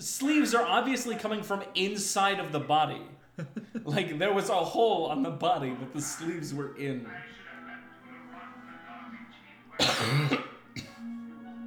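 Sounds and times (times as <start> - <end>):
speech: 0.1 - 7.4, 9.8 - 10.5
laughter: 3.2 - 4.4
person coughing into a microphone: 9.8 - 11.1.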